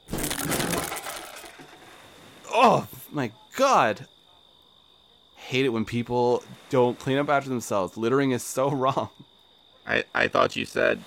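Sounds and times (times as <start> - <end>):
wooden chair smashing apart as a person slips on a bottle and falls: 0.0 - 2.0
scattered debris rattling: 0.0 - 2.4
speech: 2.6 - 4.1, 5.5 - 9.2, 9.9 - 11.0.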